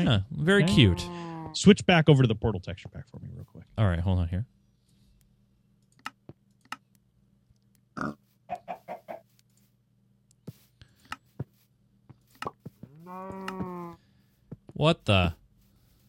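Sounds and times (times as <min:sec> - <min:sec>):
speech: 0:00.0 - 0:04.6, 0:08.0 - 0:08.6, 0:14.8 - 0:15.4
video game pig grunting and squealing: 0:00.6 - 0:01.6, 0:08.0 - 0:08.2, 0:12.9 - 0:14.0.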